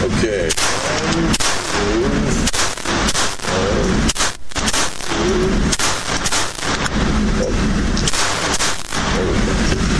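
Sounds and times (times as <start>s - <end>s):
gunshots fired at a shooting target: 0.5s - 9.5s.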